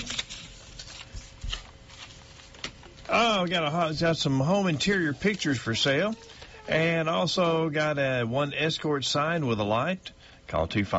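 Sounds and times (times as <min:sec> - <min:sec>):
paper sheet crinkling as it is unfolded: 0:00.0 - 0:06.7
speech: 0:03.1 - 0:10.9.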